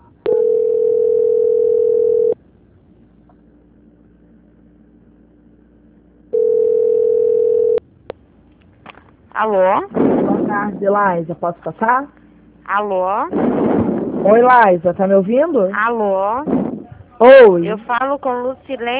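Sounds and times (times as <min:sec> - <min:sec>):
faint low hum: 0:00.0 - 0:18.9
telephone line tones during a call transfer: 0:00.3 - 0:02.4, 0:06.3 - 0:07.8
speech: 0:09.4 - 0:10.0, 0:10.6 - 0:13.5, 0:14.2 - 0:16.6, 0:17.2 - 0:18.9.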